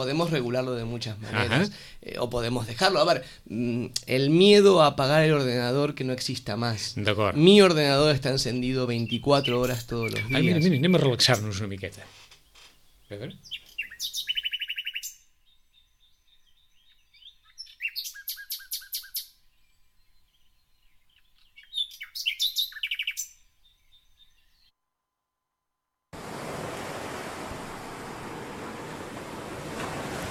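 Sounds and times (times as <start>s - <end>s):
speech: 0.0s - 12.2s, 13.1s - 14.2s
birds chirping and singing in rapid trills: 8.0s - 11.6s, 12.4s - 24.7s
sea waves rushing in: 26.2s - 30.2s.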